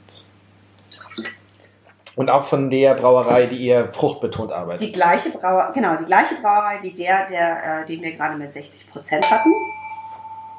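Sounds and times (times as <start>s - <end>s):
small splash of water poured into a glass: 0.8s - 1.4s
speech: 2.2s - 9.7s.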